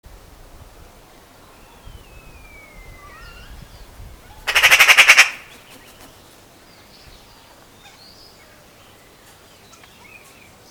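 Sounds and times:
Eurasian magpie Pica pica giving a harsh chatter: 4.4s - 6.2s.

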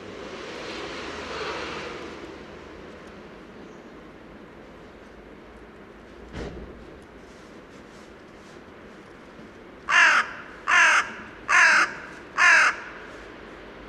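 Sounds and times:
faint background noise: 0.0s - 13.8s
carrion crow Corvus corone giving rough caws: 9.9s - 13.2s.

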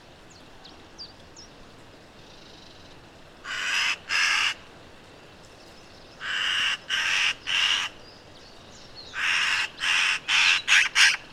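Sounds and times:
Eurasian magpie Pica pica rattling calls: 3.5s - 4.6s, 6.2s - 8.0s, 9.1s - 11.2s.

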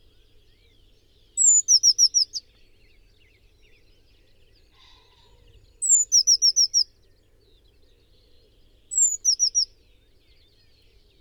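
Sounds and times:
Eurasian blue tit Cyanistes caeruleus song: 0.0s - 11.2s.

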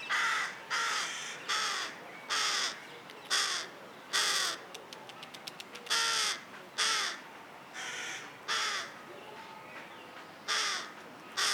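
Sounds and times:
carrion crow Corvus corone cawing: 0.1s - 4.6s, 5.9s - 7.2s, 7.8s - 8.9s, 10.5s - 11.5s
carrion crow Corvus corone rattling call: 0.1s - 4.6s, 5.9s - 7.2s, 10.5s - 11.5s.

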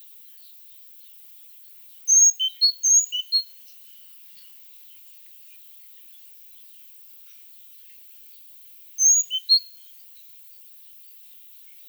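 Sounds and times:
great tit Parus major calls: 2.1s - 3.4s, 9.0s - 9.7s.

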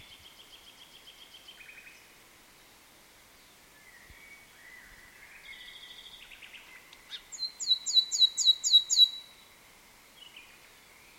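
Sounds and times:
common nightingale Luscinia megarhynchos song: 0.0s - 2.8s, 3.4s - 11.1s.

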